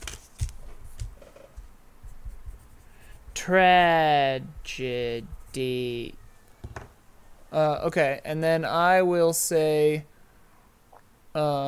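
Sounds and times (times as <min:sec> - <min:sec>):
pen scratching on paper during a tabletop dice game: 0:02.0 - 0:05.8
speech: 0:03.4 - 0:06.2, 0:07.5 - 0:10.1, 0:11.4 - 0:11.6.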